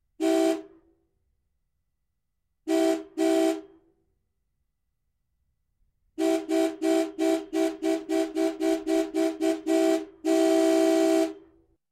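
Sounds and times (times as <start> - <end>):
antique car horn: 0.2 - 0.8, 2.7 - 3.8, 6.2 - 11.6.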